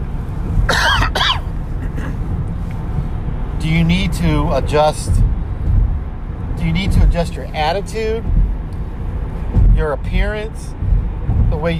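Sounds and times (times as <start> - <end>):
steady low rumble: 0.0 - 11.7
person clearing throat: 0.7 - 2.2
person coughing: 0.7 - 2.2
speech: 3.7 - 5.3, 6.6 - 8.4, 9.8 - 10.9, 11.6 - 11.7.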